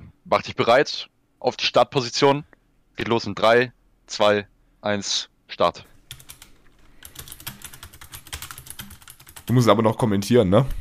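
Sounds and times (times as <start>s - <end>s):
speech: 0.3s - 5.9s, 9.5s - 10.8s
computer keyboard typing a search: 6.1s - 10.8s.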